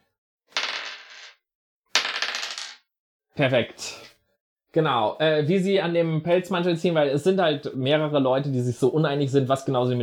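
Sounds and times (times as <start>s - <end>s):
die rolled for an escape roll in a game: 0.5s - 1.4s, 2.0s - 2.8s
speech: 3.4s - 4.1s, 4.7s - 10.0s.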